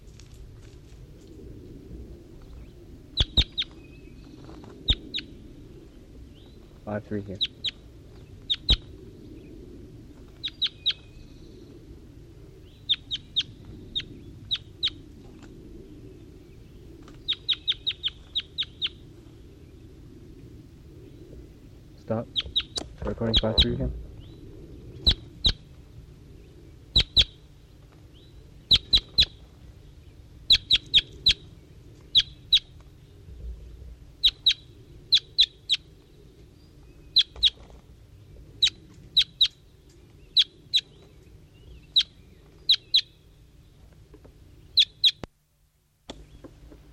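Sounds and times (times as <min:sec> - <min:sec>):
low steady rumble: 0:00.0 - 0:46.9
bird chirping: 0:02.4 - 0:05.4, 0:06.3 - 0:09.6, 0:10.4 - 0:11.8, 0:12.6 - 0:15.0, 0:16.1 - 0:19.8, 0:21.0 - 0:25.7, 0:26.3 - 0:45.3
speech: 0:06.9 - 0:07.5, 0:23.4 - 0:24.0.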